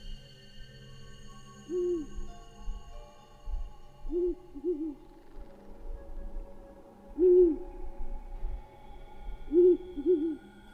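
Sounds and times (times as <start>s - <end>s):
owl perched on a low tree branch hooting mournfully: 1.7s - 2.2s, 4.1s - 5.5s, 7.2s - 7.8s, 9.5s - 10.5s.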